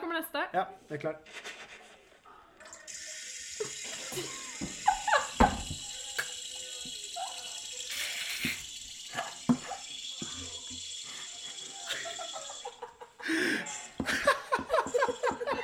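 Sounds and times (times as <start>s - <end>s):
speech: 0.2s - 1.6s, 4.2s - 4.4s
water spraying from a fire hose: 2.9s - 12.8s
laughter: 3.6s - 5.9s, 11.4s - 15.6s.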